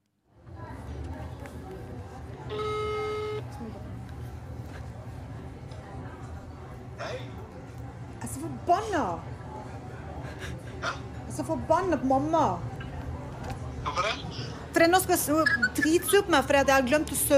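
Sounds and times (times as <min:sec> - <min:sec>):
indistinct murmuring restaurant voices from a speaker: 0:00.4 - 0:17.3
steady electronic telephone call tone: 0:02.5 - 0:03.5
speech: 0:08.7 - 0:09.3, 0:10.8 - 0:12.7, 0:14.0 - 0:17.3.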